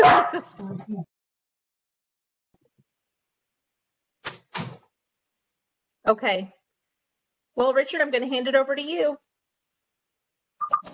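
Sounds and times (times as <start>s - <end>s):
dog barking: 0.0s - 0.5s
speech: 0.4s - 1.2s, 6.1s - 6.6s, 7.6s - 9.2s.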